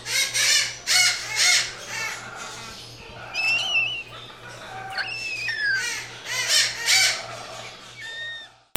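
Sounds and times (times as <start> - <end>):
bird squawking: 0.0 - 8.7
steady low hum: 0.0 - 8.7
whistled bird notes: 2.4 - 6.1, 7.0 - 8.6.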